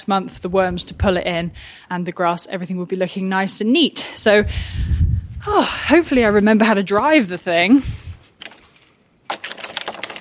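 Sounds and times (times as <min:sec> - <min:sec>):
speech: 0:00.0 - 0:08.0
bunch of keys jangling: 0:08.4 - 0:10.1.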